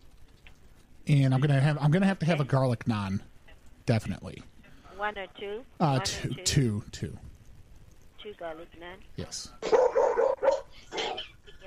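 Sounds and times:
speech: 1.1s - 3.3s, 3.9s - 7.3s, 8.2s - 10.4s
dog barking and yipping: 9.6s - 10.7s.

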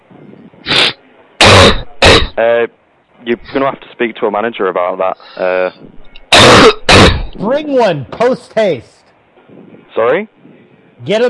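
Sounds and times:
harsh coughing: 0.7s - 2.4s, 6.3s - 7.4s
speech: 2.4s - 6.0s, 6.6s - 10.4s, 11.0s - 11.2s.

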